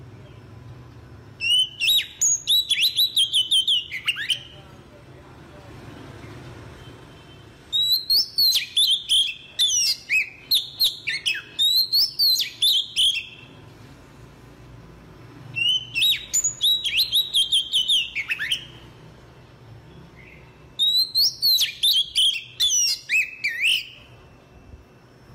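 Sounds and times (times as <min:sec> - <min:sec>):
Oriental magpie-robin song: 0:01.4 - 0:04.6, 0:07.7 - 0:13.6, 0:15.6 - 0:19.0, 0:20.1 - 0:24.2.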